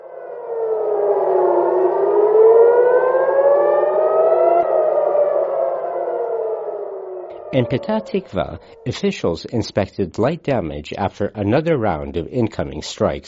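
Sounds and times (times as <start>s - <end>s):
air raid sirens wailing over Tel Aviv, Israel: 0.0s - 10.4s
speech: 7.5s - 13.2s.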